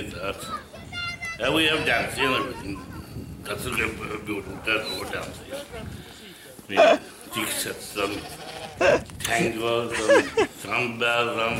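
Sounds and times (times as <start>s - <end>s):
speech: 0.0s - 0.7s, 1.4s - 6.0s, 6.7s - 11.5s
quieter murmuring noise: 0.0s - 11.5s
sheep bleating: 8.0s - 9.0s
laughter: 8.8s - 10.7s.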